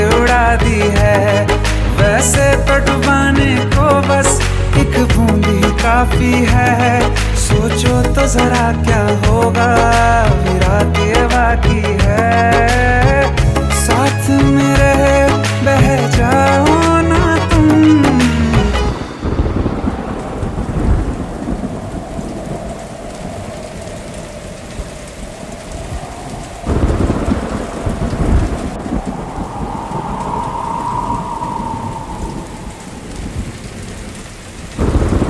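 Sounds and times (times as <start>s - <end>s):
steady heavy rain: 0.0s - 35.2s
deep rolling thunder: 18.9s - 35.2s
faint whistling wind: 18.9s - 35.2s.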